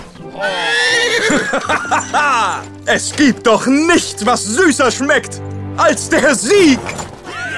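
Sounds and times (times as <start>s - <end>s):
horse neighing during a jousting match: 0.2s - 1.7s
laughter: 0.7s - 2.9s, 7.3s - 7.5s
speech: 1.7s - 7.1s.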